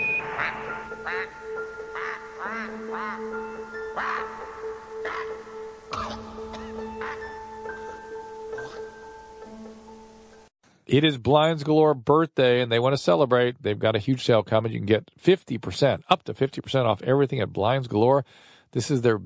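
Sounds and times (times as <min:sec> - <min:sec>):
man imitating a goose with nasal duck-like quacks: 0:00.4 - 0:01.3, 0:07.0 - 0:07.3
speech: 0:01.0 - 0:04.4, 0:10.9 - 0:19.2.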